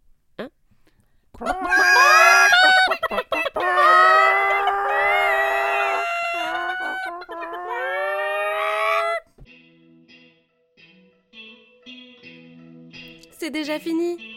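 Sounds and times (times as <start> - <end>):
speech: 1.4 - 1.9, 13.7 - 14.3
people imitating chicken clucking sounds: 1.4 - 9.3.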